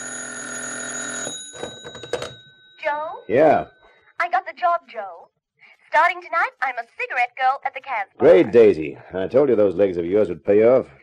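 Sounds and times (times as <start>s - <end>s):
telephone bell ringing: 0.0s - 3.9s
speech: 2.9s - 5.3s, 5.9s - 11.0s.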